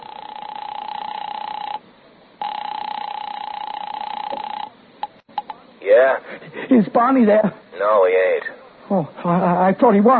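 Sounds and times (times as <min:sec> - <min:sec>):
drugstore telephone line ringing in long electronic tones: 0:00.0 - 0:01.8, 0:02.4 - 0:04.8
speech: 0:06.0 - 0:10.1.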